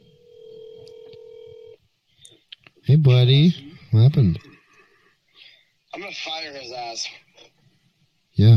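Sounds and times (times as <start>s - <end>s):
steady electronic phone tone while placing a call: 0.0s - 1.8s
faint noise: 0.0s - 8.5s
speech: 2.9s - 4.5s, 6.5s - 7.2s, 8.4s - 8.5s.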